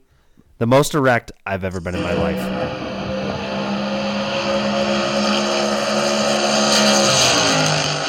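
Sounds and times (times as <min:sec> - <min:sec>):
speech: 0:00.6 - 0:02.9
big block super modified race car engine roaring at Homestead Miami Speedway: 0:01.8 - 0:08.0.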